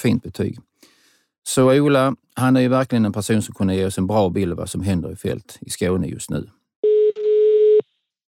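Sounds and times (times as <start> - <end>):
speech: 0.0 - 0.7, 1.5 - 6.6
telephone ringing tone while a call to an agricultural adviser in Skåne, Sweden connects: 6.8 - 7.9.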